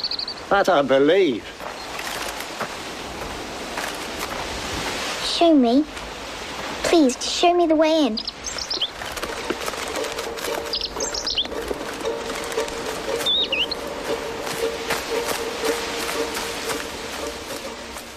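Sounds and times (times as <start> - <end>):
robin chirping: 0.0 - 0.5, 8.0 - 18.0
speech: 0.5 - 1.5, 5.4 - 6.0, 6.9 - 8.3.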